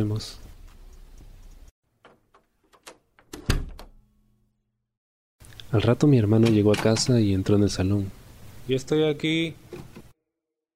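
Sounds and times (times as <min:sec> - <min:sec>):
speech: 0:00.0 - 0:00.4, 0:05.7 - 0:09.9
door latch clicks and rattles: 0:02.0 - 0:04.0
door closing with a solid thump: 0:02.8 - 0:04.0.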